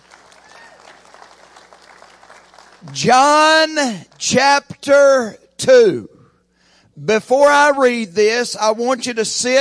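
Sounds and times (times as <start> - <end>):
congregation applauding in a large room: 0.0 - 3.0
speech: 2.8 - 6.1, 7.0 - 9.5.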